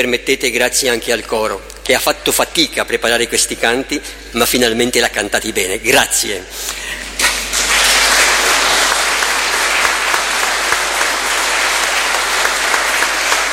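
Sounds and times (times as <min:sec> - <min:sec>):
speech: 0:00.0 - 0:07.0
audience applause: 0:07.0 - 0:13.5.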